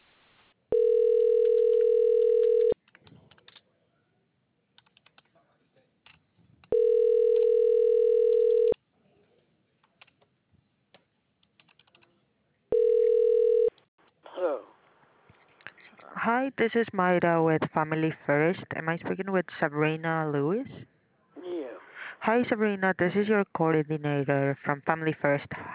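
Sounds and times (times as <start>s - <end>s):
phone line ringback tones: 0.7s - 2.8s, 6.7s - 8.8s, 12.7s - 13.7s
speech: 16.6s - 20.9s, 22.3s - 25.7s.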